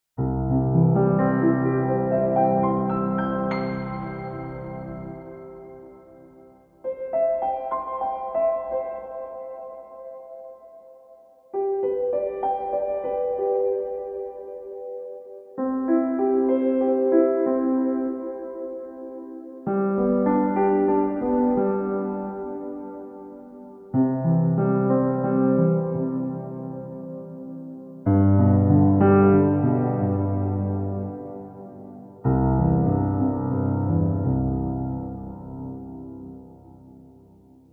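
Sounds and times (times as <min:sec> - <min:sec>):
bright cathedral piano: 0:00.2 - 0:37.7.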